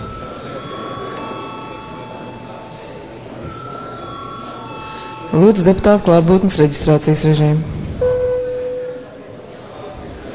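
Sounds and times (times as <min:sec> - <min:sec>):
electric bell ringing in a parliament chamber: 0:00.0 - 0:06.4, 0:08.0 - 0:09.2
speech: 0:05.3 - 0:07.8.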